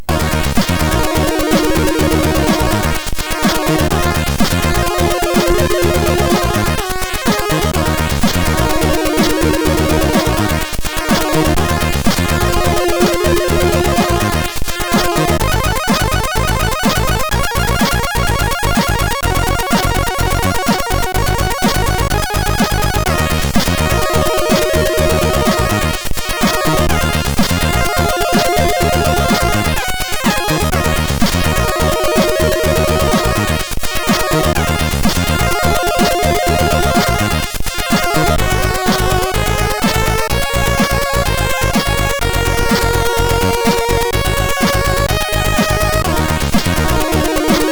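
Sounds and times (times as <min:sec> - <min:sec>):
choir-like chiptune music on a MOS6581R4 SID chip: 0:00.0 - 0:47.6.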